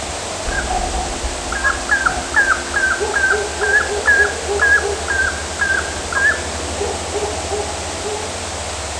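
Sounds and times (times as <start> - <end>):
steady low hum: 0.1 - 8.8
fainter lower notes: 0.4 - 7.4
Northern saw-whet owl calling short whistled high notes: 0.5 - 6.5.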